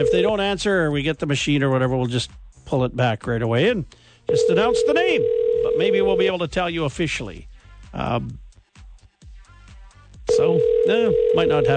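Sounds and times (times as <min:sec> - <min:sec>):
electronic telephone ring tone of an outgoing call: 0:00.0 - 0:00.6, 0:04.3 - 0:06.4, 0:10.3 - 0:11.7
speech: 0:00.0 - 0:08.4, 0:10.3 - 0:11.7.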